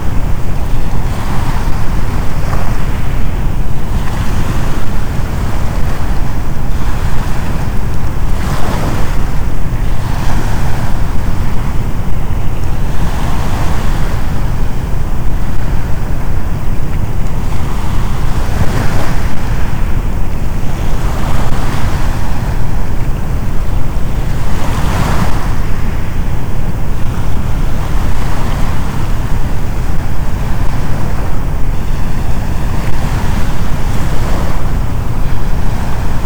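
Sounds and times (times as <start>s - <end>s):
brown noise: 0.0s - 36.2s
waves washing onto a shoreline: 0.0s - 36.2s.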